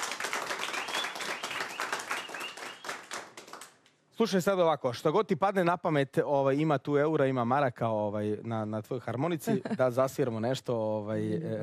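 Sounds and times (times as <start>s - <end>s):
audience clapping for an accordion player at a tavern table: 0.0s - 4.0s
speech: 4.2s - 11.6s.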